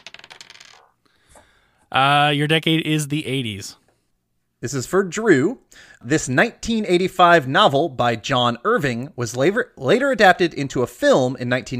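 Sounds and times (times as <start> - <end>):
dice rattling and clattering across a hard surface: 0.0 - 0.9
speech: 1.9 - 3.8, 4.6 - 11.7.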